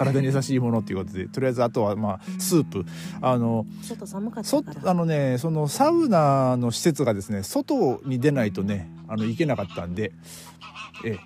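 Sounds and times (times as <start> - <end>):
speech: 0.0 - 11.2
waterbird honking by a lake: 7.7 - 11.2.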